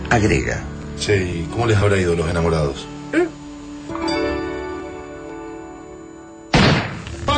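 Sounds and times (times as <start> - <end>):
speech: 0.1 - 3.4
gunshot fired inside a room: 6.5 - 7.2.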